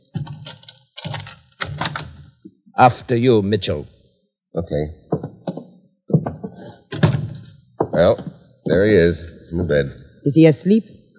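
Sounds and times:
door being opened: 0:00.1 - 0:02.4, 0:05.1 - 0:08.9
speech: 0:02.8 - 0:04.0, 0:04.6 - 0:05.0, 0:08.0 - 0:11.0.

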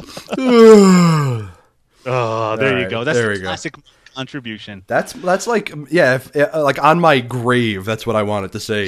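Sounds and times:
person yawning loudly: 0:00.3 - 0:01.7
speech: 0:00.3 - 0:08.8.

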